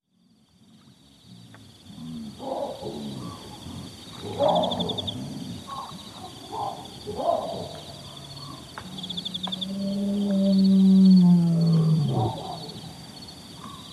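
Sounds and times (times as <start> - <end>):
lion territorial call at dawn in the Okavango Delta: 1.3 - 6.0, 8.5 - 13.0
sharp agitated baboon barks and calls in the Okavango Delta: 4.2 - 7.9.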